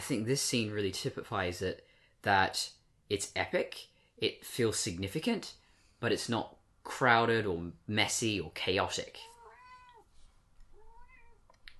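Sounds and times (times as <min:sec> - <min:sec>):
speech: 0:00.1 - 0:09.3
cat meowing: 0:09.2 - 0:10.1, 0:10.7 - 0:11.5.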